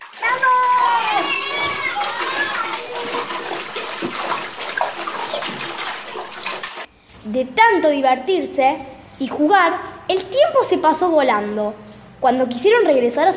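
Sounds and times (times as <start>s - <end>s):
children shouting and squealing in a river: 0.0s - 4.2s
river water splashing by a large waterfall: 0.0s - 6.9s
speech: 7.3s - 13.3s.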